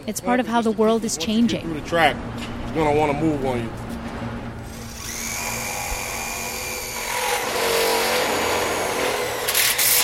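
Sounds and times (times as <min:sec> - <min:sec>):
speech: 0:00.0 - 0:03.8
power drill motor whining: 0:04.6 - 0:10.0.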